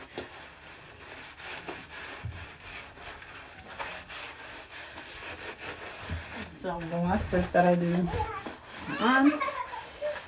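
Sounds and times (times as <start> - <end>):
cloth rubbed on the bottoms of bare feet during exfoliation: 0.0 - 10.2
speech: 6.6 - 9.5.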